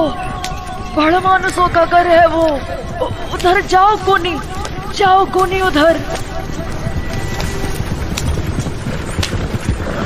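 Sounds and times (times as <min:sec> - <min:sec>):
horse-drawn carriage hooves clip-clopping: 0:00.0 - 0:10.0
windy rumbling background: 0:00.0 - 0:10.0
speech: 0:01.0 - 0:06.3
laughter: 0:02.6 - 0:08.2.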